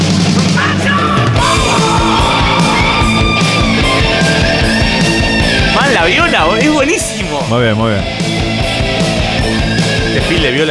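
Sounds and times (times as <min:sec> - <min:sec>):
pounding drums: 0:00.0 - 0:10.4
dense distorted heavy metal band music: 0:00.0 - 0:10.6
loud sustained heavy metal vocal scream: 0:00.6 - 0:05.7
speech: 0:06.1 - 0:08.3, 0:10.2 - 0:10.6.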